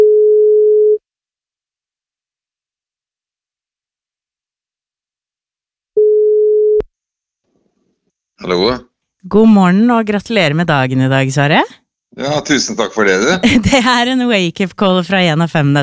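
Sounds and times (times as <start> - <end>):
telephone ringback tone: 0.0 - 1.0, 6.0 - 6.8
speech: 8.4 - 15.8.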